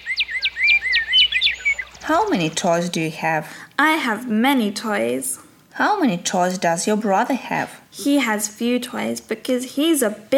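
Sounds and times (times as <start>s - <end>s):
bird singing bright falling whistled notes and trills: 0.0s - 2.0s
speech: 2.1s - 10.3s.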